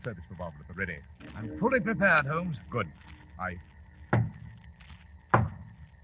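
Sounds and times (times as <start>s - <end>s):
speech: 0.0s - 3.7s
solid knocks on a door as a signal: 4.1s - 4.4s, 5.3s - 5.7s.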